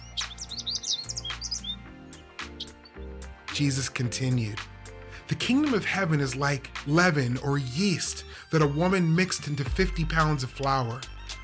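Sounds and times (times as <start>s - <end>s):
birds chirping: 0.0s - 8.5s
speech: 3.6s - 4.7s, 5.3s - 11.1s.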